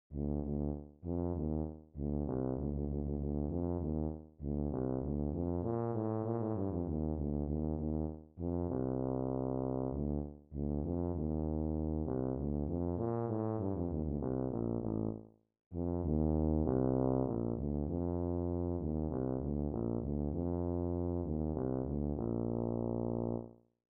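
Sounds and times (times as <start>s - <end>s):
tuba playing fast technical passage: 0.1s - 15.2s, 15.8s - 23.6s.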